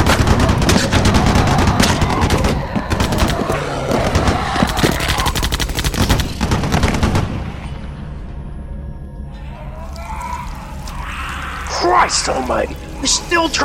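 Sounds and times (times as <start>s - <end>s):
several weapons firing in rapid machine-gun bursts: 0.0s - 7.6s
speech: 12.1s - 13.6s.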